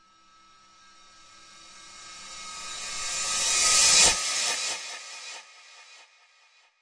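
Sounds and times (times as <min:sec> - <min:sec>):
fancy reverse crash cymbal effect: 0:00.0 - 0:06.5.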